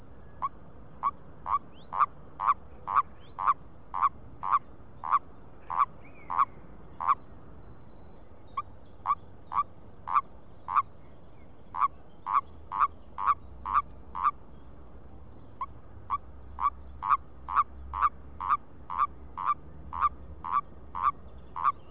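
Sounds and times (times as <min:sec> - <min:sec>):
Bufo bufo: 0:00.4 - 0:07.3, 0:08.4 - 0:11.0, 0:11.6 - 0:14.5, 0:15.5 - 0:21.8.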